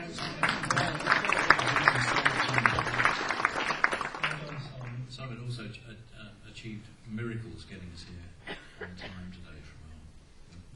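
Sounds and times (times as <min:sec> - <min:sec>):
crowd applauding: 0:00.0 - 0:05.0
speech: 0:06.7 - 0:09.8.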